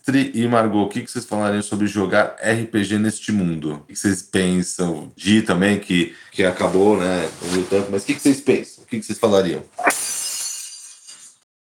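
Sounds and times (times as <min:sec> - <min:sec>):
speech: 0:00.0 - 0:09.9
drinking glass shattering: 0:09.8 - 0:11.4.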